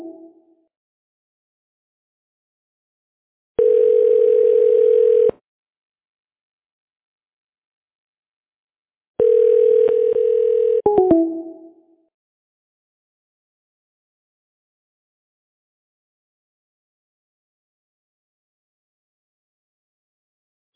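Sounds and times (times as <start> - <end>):
steady electronic telephone tone: 3.6 - 5.3, 9.2 - 11.6.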